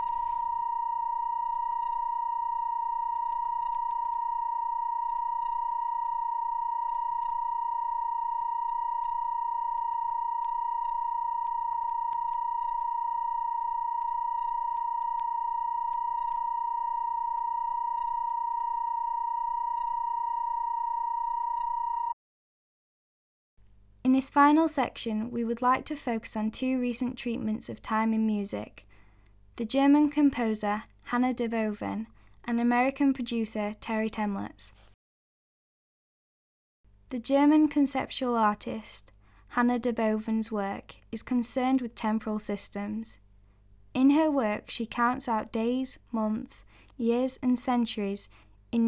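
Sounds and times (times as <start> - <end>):
sustained chord of pure sine tones in just intonation: 0.0 - 22.2
speech: 24.2 - 28.9, 29.6 - 34.9, 37.1 - 43.2, 44.0 - 48.8.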